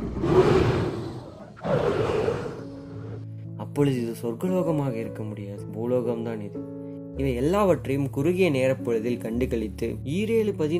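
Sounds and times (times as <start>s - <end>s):
wild animals roaring while fighting over prey: 0.0s - 3.3s
speech: 3.8s - 10.7s.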